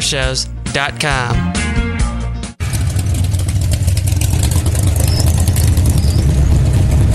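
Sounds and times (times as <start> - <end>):
speech: 0.1 - 1.8
car engine roaring and revving: 2.6 - 7.1.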